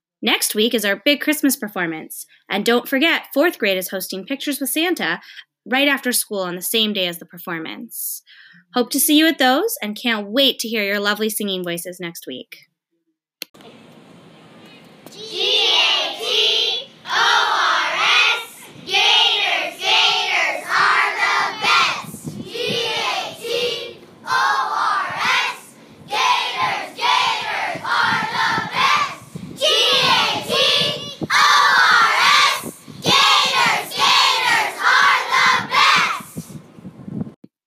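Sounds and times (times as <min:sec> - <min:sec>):
speech: 0:00.2 - 0:12.7, 0:13.5 - 0:13.9
third-grade schoolchildren shouting a school chant together: 0:15.1 - 0:36.4.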